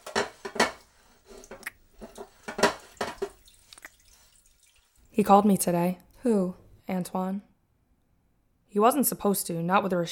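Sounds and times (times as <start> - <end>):
pots and cutlery clinking while dishes are washed: 0.0 - 3.6
running water splashing and dripping: 1.1 - 5.4
speech: 5.2 - 7.5, 8.7 - 10.0.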